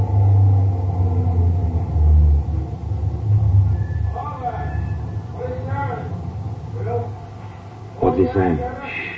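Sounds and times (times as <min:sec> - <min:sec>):
heavy truck engine rumbling as it stops at a roadblock: 0:00.0 - 0:08.7
faint voices: 0:04.0 - 0:09.1
speech: 0:08.4 - 0:09.0.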